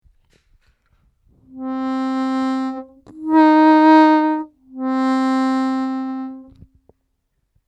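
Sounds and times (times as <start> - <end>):
harmonica overbend: 1.5 - 6.6.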